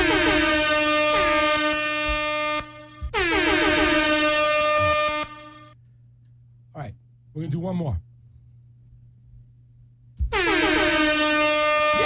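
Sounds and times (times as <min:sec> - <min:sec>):
loud air horn blasts: 0:00.0 - 0:05.8, 0:10.3 - 0:12.0
speech: 0:07.4 - 0:08.1.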